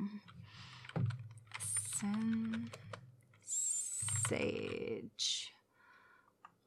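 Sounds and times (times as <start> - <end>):
typing on a computer keyboard: 0.2 - 4.9
speech: 2.0 - 2.8, 4.3 - 5.4.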